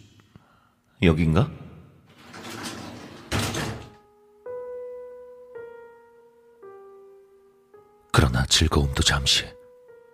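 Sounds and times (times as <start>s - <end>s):
speech: 1.0s - 1.6s, 8.5s - 9.6s
raw-fish restaurant door sliding open: 2.1s - 4.0s.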